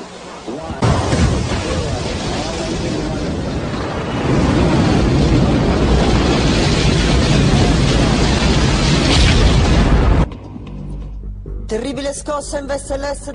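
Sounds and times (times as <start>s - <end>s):
rocket engine launch roar: 0.0s - 10.3s
speech: 12.2s - 13.3s.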